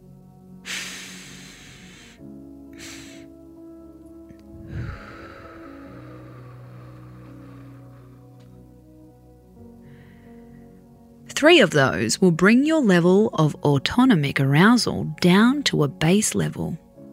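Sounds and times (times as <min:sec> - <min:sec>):
slow airy relaxation exhale through the mouth: 0:00.6 - 0:03.3, 0:04.5 - 0:08.2
long sniffing relaxation inhale through the nose: 0:00.6 - 0:03.4, 0:04.6 - 0:08.3
speech: 0:11.4 - 0:16.8.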